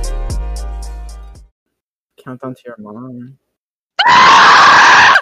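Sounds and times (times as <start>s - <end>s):
speech: 2.4s - 4.8s
loud sustained human scream: 4.0s - 5.2s.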